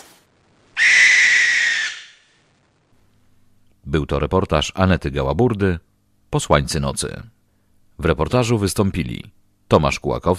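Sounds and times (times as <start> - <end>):
owl screeching at night: 0.8 - 2.4
speech: 3.9 - 7.4, 8.0 - 10.3.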